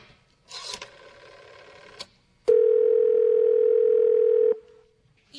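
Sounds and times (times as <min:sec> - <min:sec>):
telephone line tone: 0:01.3 - 0:04.7.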